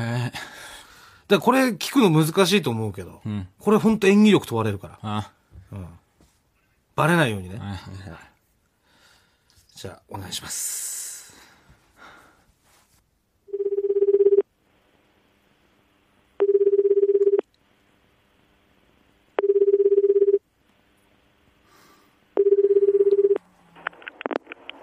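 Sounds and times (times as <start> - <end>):
speech: 0.0 - 0.5, 1.3 - 6.0, 7.0 - 8.3, 9.8 - 11.0
phone ringback tone: 13.5 - 14.5, 16.4 - 17.4, 19.4 - 20.4, 22.4 - 23.4
phone dialing beeps: 16.4 - 17.4, 22.4 - 23.4.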